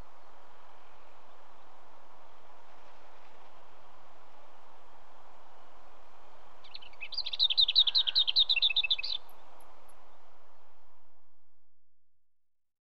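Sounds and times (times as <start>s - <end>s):
lesser whitethroat singing scratchy notes and a rattle: 6.7s - 9.4s.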